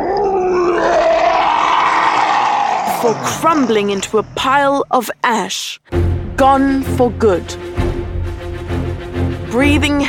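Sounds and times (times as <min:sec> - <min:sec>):
monstrous fantasy creature's mournful howl: 0:00.0 - 0:03.8
speech: 0:03.0 - 0:07.8, 0:09.5 - 0:10.0.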